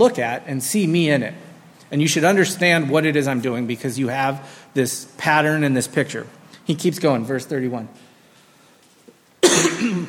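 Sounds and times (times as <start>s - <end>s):
speech: 0.0s - 8.1s, 9.4s - 10.0s
speaker clearing throat: 9.4s - 10.0s.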